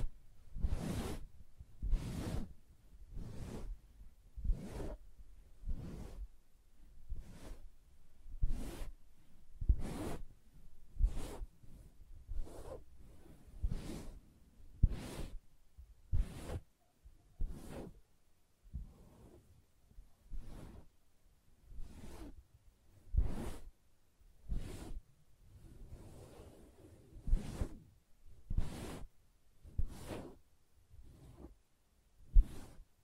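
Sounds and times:
soft fabric brushed and tapped: 0.0 - 14.2, 14.8 - 18.0, 18.7 - 19.5, 23.0 - 23.8, 24.4 - 25.0, 25.7 - 30.4, 32.2 - 33.0.

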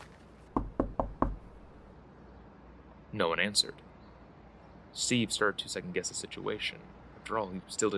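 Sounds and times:
knocking on the wooden front door of a house: 0.6 - 1.6
speech: 3.1 - 3.9, 5.0 - 7.9.

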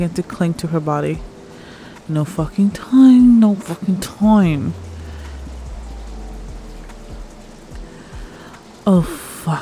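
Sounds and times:
speech: 0.0 - 1.3, 2.1 - 4.8, 8.8 - 9.6
steady rain: 0.0 - 9.6
heavy low rumble: 4.1 - 8.3.

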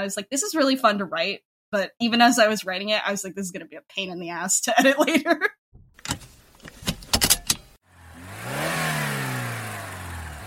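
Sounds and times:
speech: 0.0 - 6.2
vehicle engine revving as it drives off: 7.8 - 10.4.

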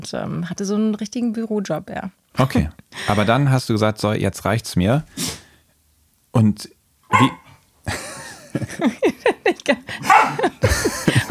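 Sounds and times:
speech: 0.0 - 5.4, 6.4 - 8.0, 8.6 - 11.2
dog barking indoors: 7.1 - 7.6, 10.0 - 10.5
laughter: 7.9 - 11.2.

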